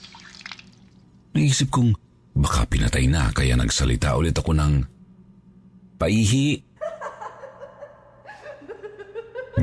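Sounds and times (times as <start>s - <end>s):
speech: 1.3s - 4.9s, 6.0s - 6.7s
eerie high-pitched giggle sound effect: 6.8s - 9.6s.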